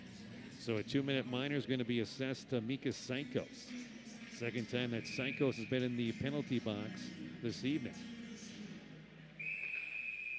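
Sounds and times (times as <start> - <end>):
speech: 0.6 - 8.2
referee's whistle blast off a faceoff at a women's hockey game: 5.0 - 5.8, 9.4 - 10.3.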